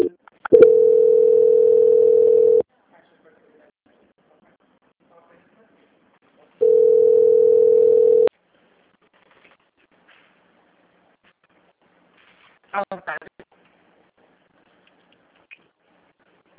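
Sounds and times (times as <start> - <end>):
telephone call-transfer tone on a bank customer-service line: 0.0 - 2.6, 6.6 - 8.3.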